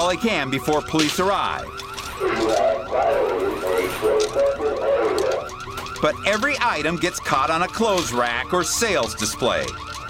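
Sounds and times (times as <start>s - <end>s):
speech: 0.0s - 4.5s, 6.0s - 10.0s
motion-sensitive store alarm in Macon Georgia set off by a thief: 0.4s - 10.0s.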